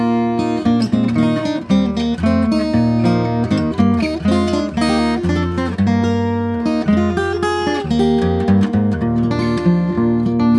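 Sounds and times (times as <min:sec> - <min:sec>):
lute galliard: 0:00.1 - 0:10.4.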